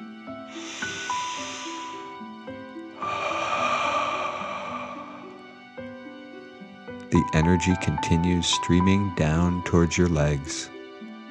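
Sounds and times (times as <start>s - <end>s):
soft steady music: 0.0s - 11.2s
deep breath in through the nose and out through the mouth: 0.5s - 6.5s
speech: 7.2s - 10.7s.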